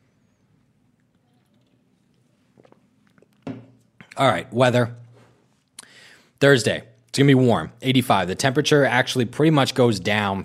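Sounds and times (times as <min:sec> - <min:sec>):
sipping a drink: 0:00.5 - 0:04.2
soft wet mouth sounds: 0:00.6 - 0:04.2
speech: 0:04.2 - 0:05.0, 0:06.4 - 0:10.4.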